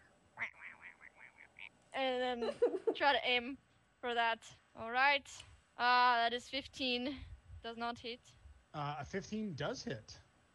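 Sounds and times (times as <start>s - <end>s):
duck quacking: 0.4s - 1.7s
speech: 2.0s - 10.2s
laughter: 2.4s - 3.0s.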